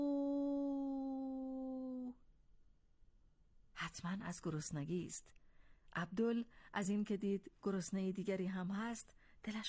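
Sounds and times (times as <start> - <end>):
human voice imitating a distant wolf howling: 0.0 - 2.2
speech: 3.9 - 5.4, 6.0 - 9.6.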